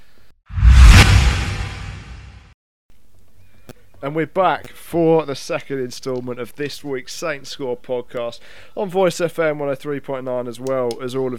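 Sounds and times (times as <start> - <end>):
loud whoosh transition sound effect: 0.5 - 2.4
speech: 4.0 - 11.3.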